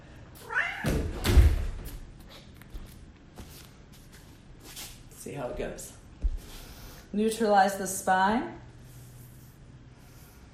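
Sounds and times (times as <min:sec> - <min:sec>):
cat giving a short rising meow: 0:00.4 - 0:01.0
speech: 0:05.3 - 0:06.0, 0:07.1 - 0:08.6.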